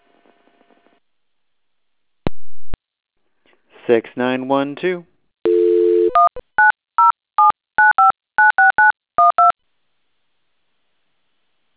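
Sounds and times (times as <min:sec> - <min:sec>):
speech: 0:03.9 - 0:05.1
telephone dial tone: 0:05.5 - 0:09.5.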